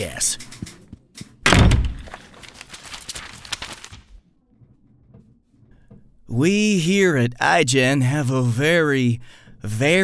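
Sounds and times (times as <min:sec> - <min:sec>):
speech: 0:00.0 - 0:00.4, 0:06.3 - 0:10.0
faint rustling and shuffling in the room: 0:00.3 - 0:06.3
door swinging shut with a loud thump: 0:01.4 - 0:02.2.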